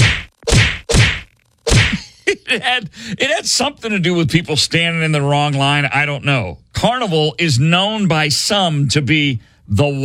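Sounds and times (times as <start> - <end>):
slaps on skin in a slap fight between two women: 0.0 - 2.0
speech: 2.5 - 10.0.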